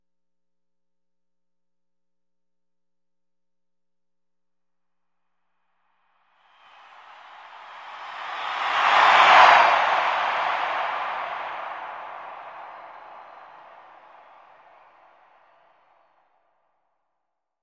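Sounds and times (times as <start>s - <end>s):
sports arena crowd cheering: 6.6s - 15.9s.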